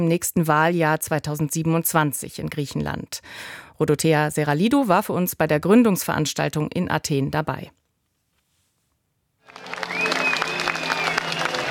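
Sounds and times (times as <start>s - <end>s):
speech: 0.0s - 7.8s
large crowd applauding on a public square in Athens: 9.4s - 11.6s.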